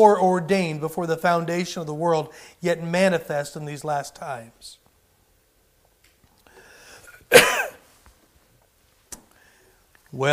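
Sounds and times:
speech: 0.0s - 4.8s, 10.1s - 10.3s
preacher clearing his throat during a sermon: 7.1s - 7.8s.

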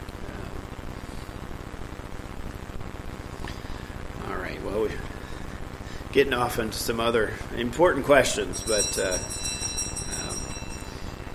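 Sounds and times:
speech: 4.7s - 5.2s, 6.1s - 9.5s
bell ringing: 8.3s - 11.3s.

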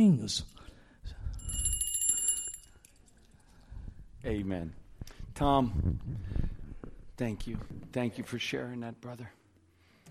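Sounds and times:
speech: 0.0s - 1.2s, 4.2s - 4.8s, 5.4s - 6.4s, 7.2s - 9.4s
small hand bell ringing: 1.3s - 3.0s.

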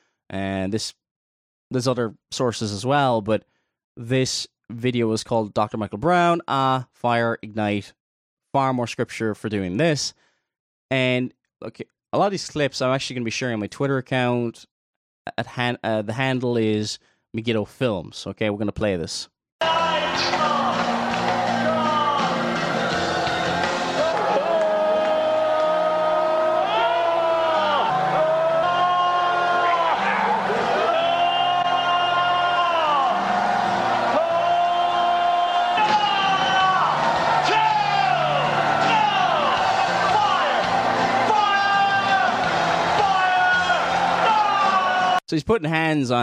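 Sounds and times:
speech: 0.3s - 1.0s, 1.7s - 10.2s, 10.9s - 20.6s, 45.3s - 46.2s
large crowd screaming and wailing: 19.6s - 45.2s.

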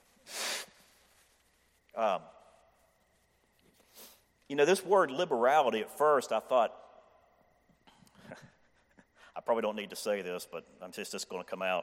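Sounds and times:
person blowing nose: 0.2s - 0.8s
speech: 2.0s - 2.4s, 4.5s - 6.8s, 9.4s - 11.8s.

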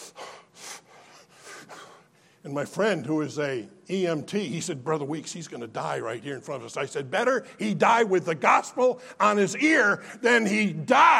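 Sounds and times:
voice imitating heavy gasping breaths of a man in his seventies: 0.0s - 2.4s
speech: 2.4s - 11.1s.

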